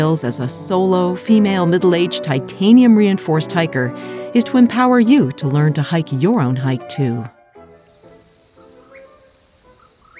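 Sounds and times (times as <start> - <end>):
speech: 0.0 - 7.4
poorwill calling at night: 6.7 - 10.1
high-pitched cricket drone on a hiking trail at night: 7.6 - 10.1.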